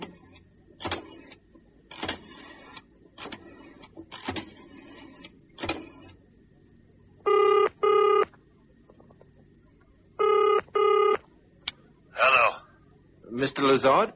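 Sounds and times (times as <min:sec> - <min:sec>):
phone line double-pulse ring tone: 0:07.3 - 0:08.3, 0:10.2 - 0:11.2
speech: 0:13.5 - 0:14.1.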